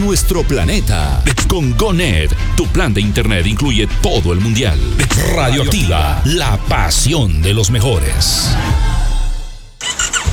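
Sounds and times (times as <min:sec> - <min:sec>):
speech: 0:00.1 - 0:08.9
motorcycle engine starting: 0:09.1 - 0:10.3.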